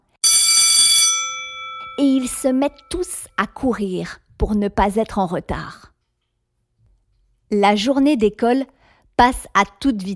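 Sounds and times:
school bell ringing in the distance: 0:00.2 - 0:03.3
speech: 0:02.0 - 0:05.9, 0:07.5 - 0:10.1.

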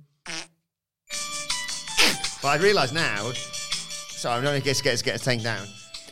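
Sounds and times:
synthetic fart noise from a pressed Santa toy: 0:00.2 - 0:00.6, 0:02.0 - 0:02.3
speech: 0:02.4 - 0:03.6, 0:04.2 - 0:05.8.

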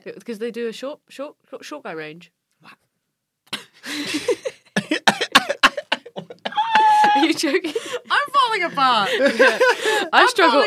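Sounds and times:
speech: 0:00.0 - 0:02.8, 0:07.1 - 0:10.6
person coughing: 0:03.6 - 0:07.2
laughter: 0:03.8 - 0:10.6.

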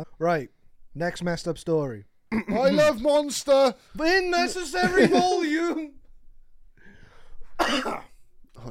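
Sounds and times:
speech: 0:00.0 - 0:06.0
single harsh explosive cough: 0:02.3 - 0:02.8, 0:07.6 - 0:08.2
laughter: 0:04.4 - 0:05.9.

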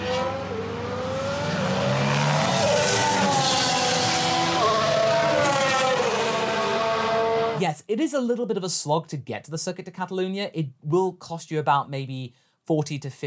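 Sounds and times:
Formula 1 V6 race car engines roaring: 0:00.0 - 0:07.6
speech: 0:07.6 - 0:13.2.

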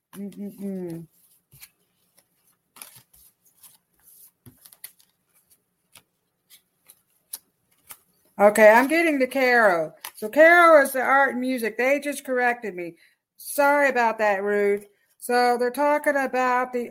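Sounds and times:
playing cards being handled and put back in order: 0:00.1 - 0:09.1
speech: 0:00.2 - 0:01.7, 0:08.4 - 0:16.9.

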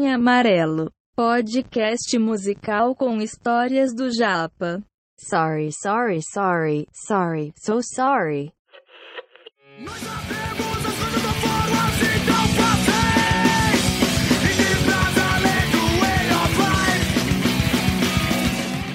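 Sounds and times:
speech: 0:00.0 - 0:08.6, 0:09.8 - 0:12.6
distorted guitars in a punk rock song: 0:09.7 - 0:18.9
shouted vocals in a punk rock song: 0:09.8 - 0:17.2
driving drums in a punk rock song: 0:09.9 - 0:18.9.

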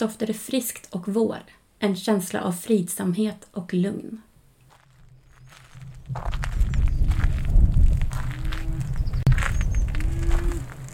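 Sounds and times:
speech: 0:00.0 - 0:04.3, 0:06.1 - 0:06.5
footsteps crunching on a gravel road during a country walk: 0:04.7 - 0:10.9
low rumble: 0:04.9 - 0:10.9.

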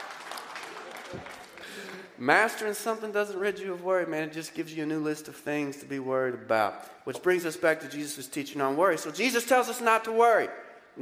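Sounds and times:
single person clapping: 0:00.0 - 0:02.1
speech: 0:01.1 - 0:01.4, 0:02.2 - 0:11.0.

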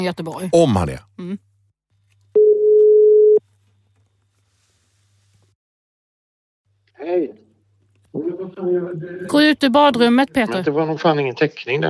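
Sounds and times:
speech: 0:00.0 - 0:01.5, 0:07.0 - 0:07.4, 0:08.1 - 0:11.8
telephone ringing tone while placing a call: 0:02.4 - 0:03.4.

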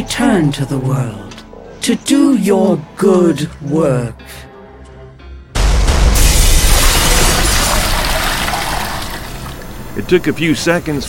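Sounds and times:
speech: 0:00.1 - 0:04.5, 0:10.0 - 0:11.0
glass tank shattering: 0:06.1 - 0:09.5
liquid splashing and pouring out of a broken glass tank: 0:06.1 - 0:10.0.

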